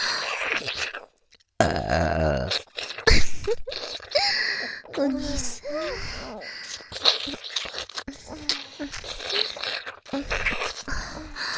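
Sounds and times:
breathy vocal sounds: 0:00.0 - 0:03.1, 0:04.0 - 0:11.5
speech: 0:01.6 - 0:02.7, 0:05.0 - 0:06.5
long loud deliberate burp: 0:01.6 - 0:03.2.

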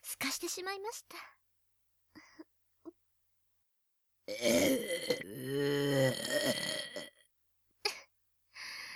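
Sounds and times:
speech: 0:00.3 - 0:01.4, 0:04.3 - 0:07.1
long deliberate burp: 0:04.3 - 0:07.2.

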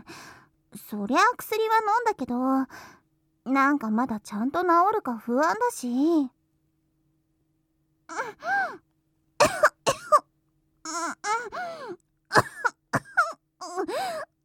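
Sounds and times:
speech: 0:00.9 - 0:06.4, 0:10.9 - 0:13.0, 0:13.6 - 0:14.3
person clearing throat: 0:09.4 - 0:10.3, 0:12.3 - 0:13.4
person coughing: 0:09.4 - 0:10.3, 0:12.3 - 0:13.4.

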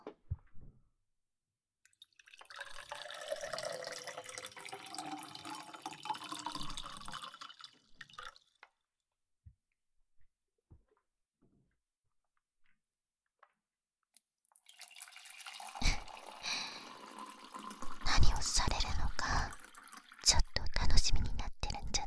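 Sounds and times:
hot water pouring in a steady rushing stream: 0:02.0 - 0:08.4, 0:14.5 - 0:21.4.

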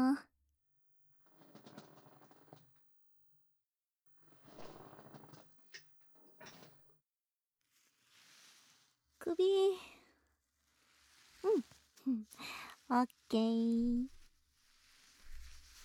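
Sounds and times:
salon shampoo chair being moved with mechanical grinding and creaking: 0:01.3 - 0:02.7, 0:04.3 - 0:06.8
soft rustle: 0:07.6 - 0:15.8
speech: 0:12.3 - 0:14.1.

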